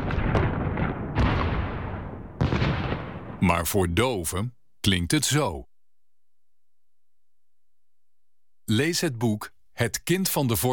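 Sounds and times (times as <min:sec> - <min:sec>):
bombardment of heavy explosions: 0:00.0 - 0:03.8
speech: 0:03.4 - 0:05.7, 0:08.7 - 0:10.7.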